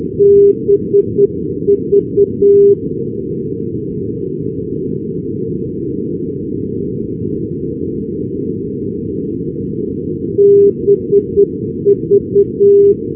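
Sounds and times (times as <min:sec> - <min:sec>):
non-directional radio beacon signal: 0:00.2 - 0:02.8, 0:10.4 - 0:13.0.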